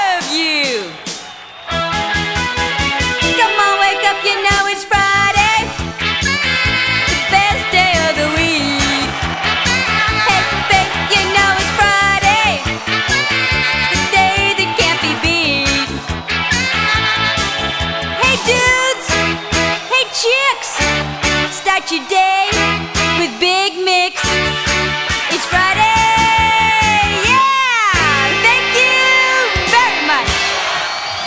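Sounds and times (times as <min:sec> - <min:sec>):
rock and roll music: 0:00.1 - 0:31.1.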